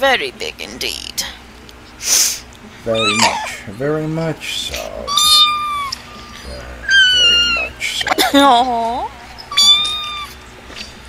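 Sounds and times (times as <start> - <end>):
speech: 0.0 - 1.4, 2.0 - 5.3, 8.3 - 9.2
pregnant cat meowing: 2.9 - 3.6, 5.0 - 6.2, 6.9 - 7.8, 9.5 - 10.4.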